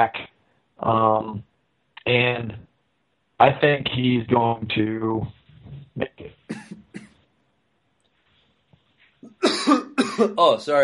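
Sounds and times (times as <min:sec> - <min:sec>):
speech: 0:00.0 - 0:02.7, 0:03.4 - 0:05.4, 0:06.0 - 0:06.8, 0:09.4 - 0:10.8
person coughing: 0:06.5 - 0:07.1, 0:09.2 - 0:10.5.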